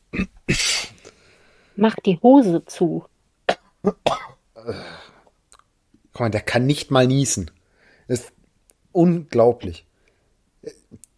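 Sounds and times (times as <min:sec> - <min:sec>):
person coughing while holding their nose: 0:00.1 - 0:01.0, 0:03.5 - 0:04.9
speech: 0:01.8 - 0:03.1, 0:03.8 - 0:05.0, 0:06.2 - 0:08.4, 0:09.0 - 0:09.9, 0:10.6 - 0:11.0.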